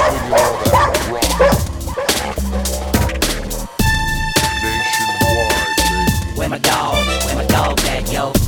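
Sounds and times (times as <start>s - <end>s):
red nose pit bulls barking aggressively: 0.0s - 3.2s
heavy pounding music beat: 0.0s - 8.4s.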